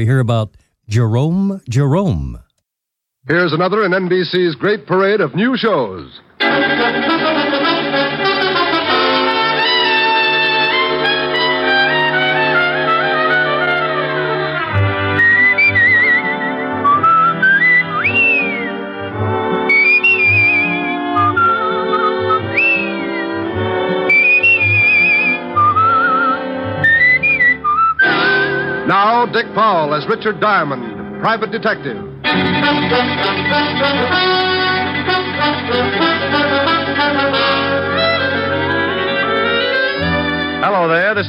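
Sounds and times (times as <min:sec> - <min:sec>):
speech: 0:00.0 - 0:02.4, 0:03.2 - 0:08.3, 0:28.9 - 0:34.6, 0:35.4 - 0:38.1, 0:40.6 - 0:41.2
sustained instrumental chord and steady rhythmic musical backing: 0:06.3 - 0:41.2
whistled theme tune for a detective drama: 0:15.0 - 0:28.9.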